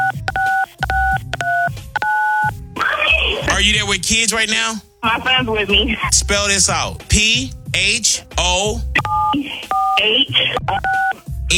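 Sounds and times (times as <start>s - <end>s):
telephone keypad dialing tones: 0.0s - 2.5s, 9.0s - 11.2s
speech: 3.7s - 11.5s.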